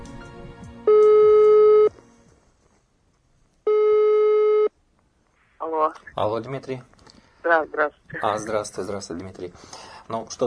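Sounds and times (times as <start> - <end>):
faint noise: 0.8 - 10.4
telephone ringback tone: 0.9 - 1.9, 3.7 - 4.7
speech: 5.8 - 10.4.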